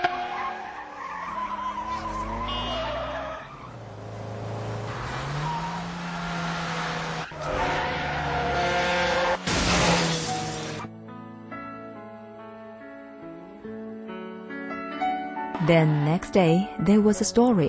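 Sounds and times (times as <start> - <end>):
motorcycle tires screeching in a skid: 0.0 - 10.9, 15.6 - 16.5
motorcycle engine revving: 1.8 - 10.8
motorcycle crashing into a building with shattering impacts: 9.3 - 10.9
speech: 15.7 - 17.6.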